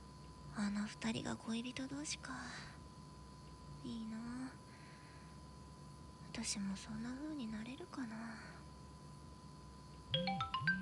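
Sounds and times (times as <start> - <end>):
faint steady hum: 0.0 - 10.7
speech: 0.6 - 2.8, 3.8 - 4.6, 6.4 - 8.6, 10.1 - 10.7
phone ringtone of bright electronic tones: 10.1 - 10.7.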